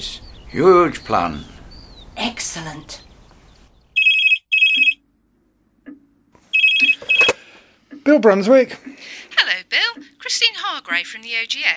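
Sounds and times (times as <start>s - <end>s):
speech: 0.0s - 1.6s, 2.2s - 3.0s, 8.0s - 11.7s
telephone ringing with electronic trill: 4.0s - 5.0s, 6.5s - 7.5s.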